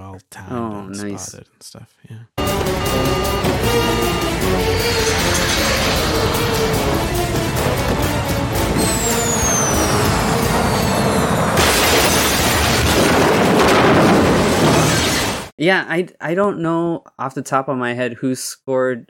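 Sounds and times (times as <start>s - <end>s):
speech: 0.5s - 5.6s, 15.6s - 19.0s
dramatic orchestral music: 2.4s - 11.6s
high plane engine whine streaking downward: 2.4s - 11.9s
massive roaring crash of a plane slamming into a hangar: 2.4s - 15.5s.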